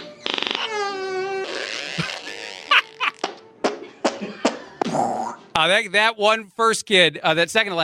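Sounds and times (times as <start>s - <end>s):
children blowing fart noises with their mouths: 0.0s - 3.8s
children giggling: 2.0s - 3.2s, 3.8s - 4.8s
speech: 5.6s - 7.8s.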